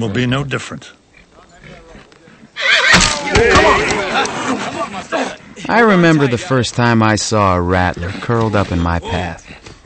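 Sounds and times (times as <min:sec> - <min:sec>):
speech: 0:00.0 - 0:01.0, 0:02.6 - 0:09.8
wild Mustang horse being handled by Army soldiers neighing: 0:01.1 - 0:04.8
laughter: 0:03.2 - 0:06.6, 0:09.0 - 0:09.8.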